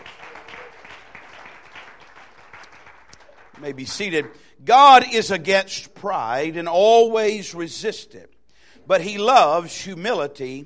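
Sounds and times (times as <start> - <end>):
congregation clapping in a church sanctuary during a worship service: 0.0 - 4.5
speech: 3.6 - 8.3, 8.9 - 10.6.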